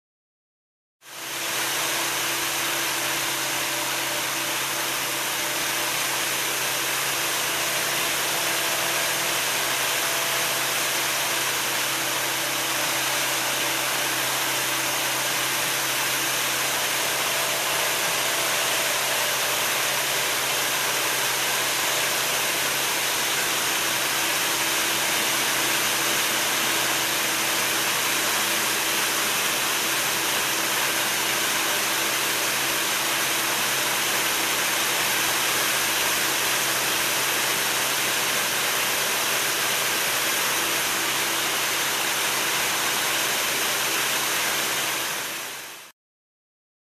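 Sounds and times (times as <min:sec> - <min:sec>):
machine running: 0:01.3 - 0:45.8.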